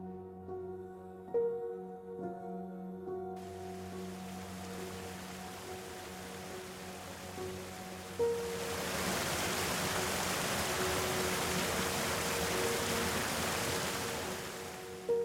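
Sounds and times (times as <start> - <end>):
low sustained musical drone: 0.0 - 15.2
gentle waterfall of two parallel streams falling softly: 3.4 - 15.2.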